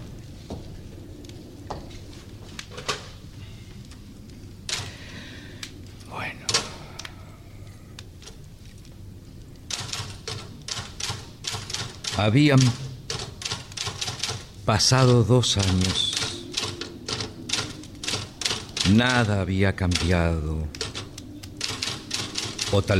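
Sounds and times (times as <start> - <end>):
steady low hum: 0.0 - 11.5, 14.4 - 22.9
man typing on a mechanical typewriter: 9.7 - 19.3, 19.9 - 22.9
speech: 12.2 - 12.8, 14.7 - 16.1, 18.9 - 20.8, 22.7 - 22.9.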